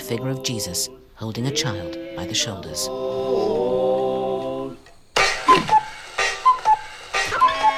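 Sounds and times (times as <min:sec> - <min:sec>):
speech: 0:00.1 - 0:04.0
cuckoo clock whirring mechanical bursts with whistle-like notes: 0:04.8 - 0:07.7
wall cuckoo clock sustained piping tone: 0:05.2 - 0:07.7.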